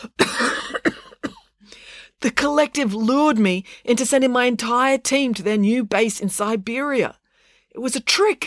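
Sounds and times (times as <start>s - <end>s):
person imitating wet rattly coughing of a woman with fluid in her lungs: 0.0s - 1.5s
speech: 2.2s - 8.4s.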